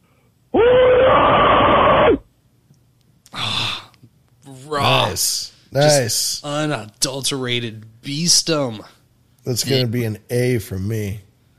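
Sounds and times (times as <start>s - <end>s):
person screaming on a recorded voicemail: 0.5s - 2.2s, 3.4s - 3.9s
short breathy gasp or exhale: 3.3s - 3.9s
speech: 5.2s - 11.3s.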